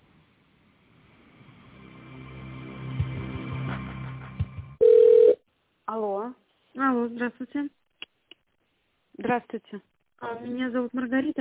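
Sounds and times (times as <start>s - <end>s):
telephone line noise during a call transfer: 4.8s - 5.4s
speech: 6.0s - 7.8s, 9.2s - 11.3s.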